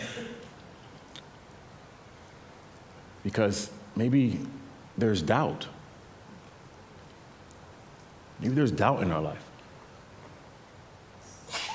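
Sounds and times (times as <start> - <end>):
sneeze from someone in the audience: 0.0 - 0.4, 11.3 - 11.7
speech: 3.2 - 5.8, 8.4 - 9.5.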